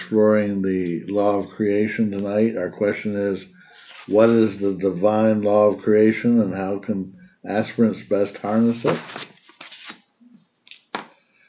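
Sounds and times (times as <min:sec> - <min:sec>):
speech: 0:00.1 - 0:09.3
tarot cards being shuffled by hand: 0:08.4 - 0:11.2.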